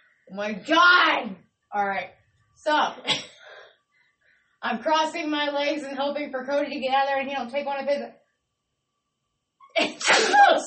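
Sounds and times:
speech: 0.3s - 3.3s, 4.6s - 8.2s, 9.8s - 10.6s
loud sneeze: 9.8s - 10.6s.

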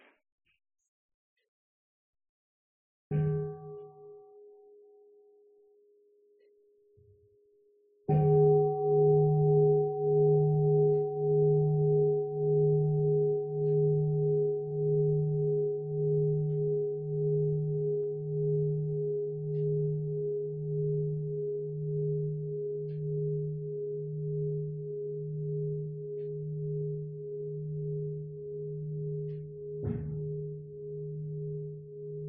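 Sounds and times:
meditation bell strike: 3.1s - 5.1s, 8.1s - 32.2s.

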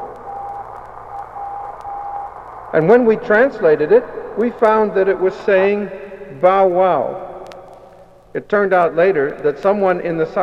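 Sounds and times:
weak Morse code radio signal on a satellite frequency: 0.0s - 2.9s
constant hiss of radio static: 0.0s - 10.4s
speech: 2.8s - 7.3s, 8.4s - 10.4s.

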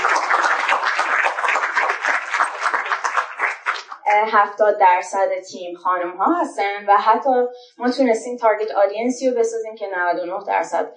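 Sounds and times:
large crowd applauding in a roomy hall: 0.0s - 4.0s
speech: 4.2s - 10.9s.

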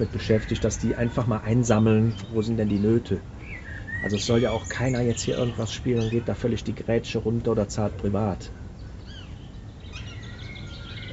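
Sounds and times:
speech: 0.0s - 3.4s, 4.0s - 8.6s
rising whistled bird calls: 0.0s - 6.3s, 9.0s - 11.1s
birds chirping and twittering in a theater's garden: 0.0s - 11.1s
low rumbling background: 0.0s - 11.1s.

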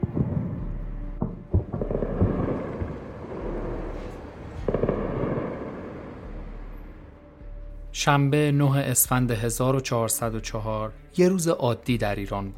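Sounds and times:
distant explosions: 0.0s - 6.6s
speech: 8.0s - 12.5s.

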